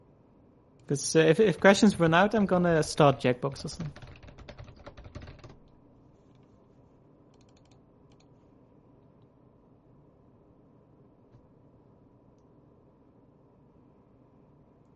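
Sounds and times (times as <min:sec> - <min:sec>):
speech: 0:00.9 - 0:04.1
soft computer keyboard typing: 0:02.4 - 0:05.7, 0:07.4 - 0:08.3.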